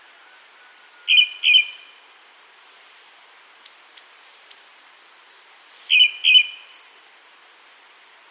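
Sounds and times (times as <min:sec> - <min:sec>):
Tickell's thrush calls: 0:01.0 - 0:02.0, 0:05.9 - 0:06.9.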